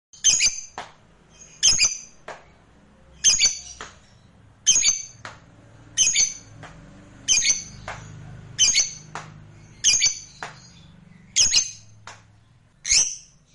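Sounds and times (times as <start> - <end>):
faint background hum: 0.2 - 13.5
lovebird giving harsh shrill squawks: 1.5 - 2.2, 3.2 - 3.8, 4.6 - 5.2, 6.0 - 6.5, 7.3 - 7.8, 9.7 - 10.4, 11.3 - 11.9, 12.8 - 13.5.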